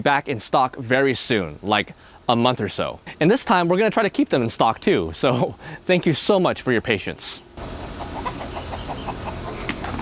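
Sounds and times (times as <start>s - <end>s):
speech: 0.0s - 7.7s
low hum: 0.0s - 9.9s
chickens clucking: 7.6s - 9.9s.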